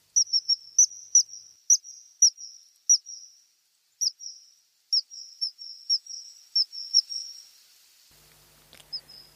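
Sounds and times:
common kingfisher sharp high-pitched whistled calls: 0:00.1 - 0:03.4, 0:04.0 - 0:07.5, 0:08.9 - 0:09.3.

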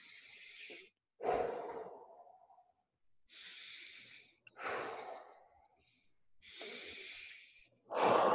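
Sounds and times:
deep active breathing with inhales and forceful exhales: 0:00.0 - 0:02.6, 0:03.3 - 0:08.3.

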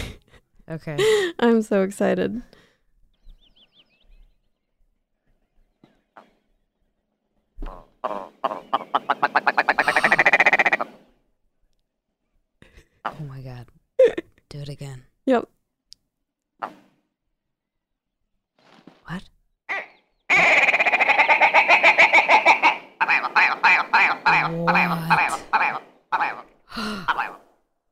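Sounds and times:
speech: 0:00.7 - 0:02.6
bird mating call with a rapid rattling trill: 0:07.6 - 0:11.1, 0:19.7 - 0:27.5.

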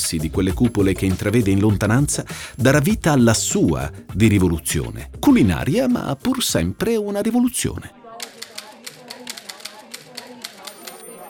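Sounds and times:
speech: 0:00.1 - 0:08.3
typewriter keys clacking: 0:08.3 - 0:11.2.

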